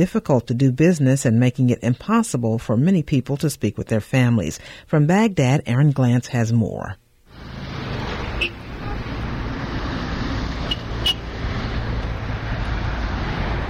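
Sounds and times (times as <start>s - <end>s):
speech: 0.0s - 7.0s
road traffic roar with cars speeding past in Baghdad: 7.3s - 13.6s.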